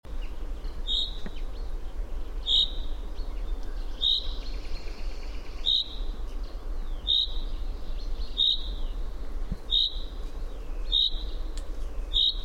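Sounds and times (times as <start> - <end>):
common chaffinch Fringilla coelebs pink calls: 0.2 - 9.0, 9.6 - 12.4.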